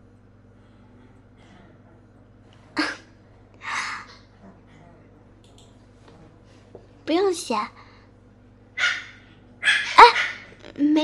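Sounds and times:
speech: 7.1 - 7.8
small native dog barking: 8.8 - 10.5.

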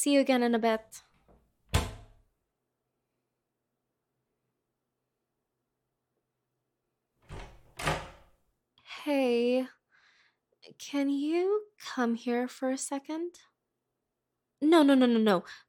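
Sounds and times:
speech: 0.0 - 1.1, 9.0 - 9.8, 10.8 - 13.5, 14.6 - 15.6
door thudding shut: 1.7 - 2.2, 7.3 - 8.3.

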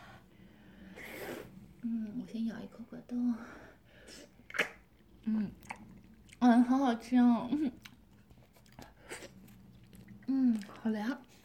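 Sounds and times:
speech: 1.8 - 4.3, 5.2 - 5.7, 6.6 - 7.8, 10.5 - 11.3
chewing and biting cold jelly from the fridge: 4.4 - 11.4.

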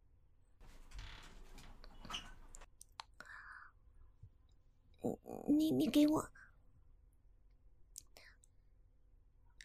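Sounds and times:
door sliding open: 0.6 - 2.7
speech: 5.0 - 6.4.

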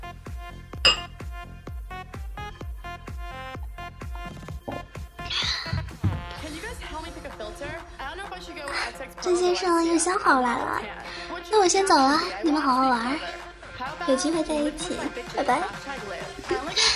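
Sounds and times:
steady rhythmic music: 0.0 - 16.9
wine glasses clinking in a toast: 0.9 - 1.2
speech: 8.9 - 13.4, 14.1 - 15.9.

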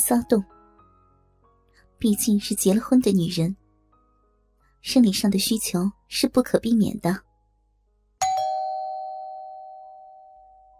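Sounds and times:
speech: 0.0 - 0.6, 2.0 - 3.6, 4.8 - 7.3
doorbell chiming with a bright clear tone: 8.2 - 10.7.

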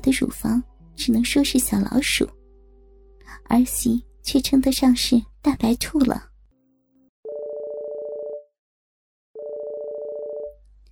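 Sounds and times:
speech: 0.0 - 2.4, 3.3 - 6.3
mobile phone ringing: 7.3 - 8.5, 9.4 - 10.5.

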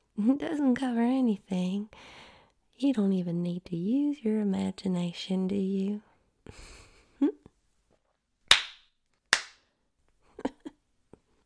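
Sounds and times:
speech: 0.2 - 2.2, 2.8 - 7.3
hand slapping bare buttocks: 8.5 - 9.6.

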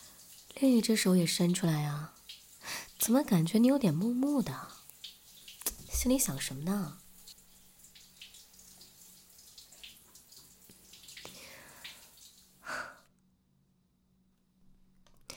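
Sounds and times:
shower spraying running water: 0.0 - 13.0
speech: 0.6 - 2.2, 3.0 - 4.8, 6.0 - 7.0
brief splash or clunk: 5.6 - 6.7.

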